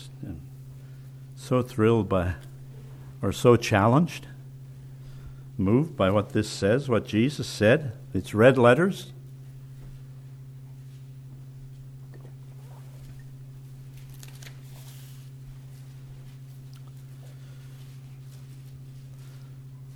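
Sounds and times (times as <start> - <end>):
steady low electrical hum: 0.0 - 19.9
speech: 1.5 - 2.5, 3.2 - 4.3, 5.6 - 9.2
people turning Bible pages: 13.9 - 16.6.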